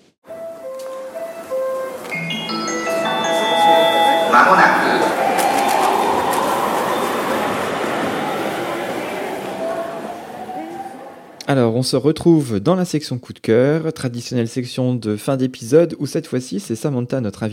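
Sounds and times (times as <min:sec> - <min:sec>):
podcast segment musical jingle: 0:00.3 - 0:08.8
speech: 0:04.4 - 0:05.2, 0:11.5 - 0:17.5.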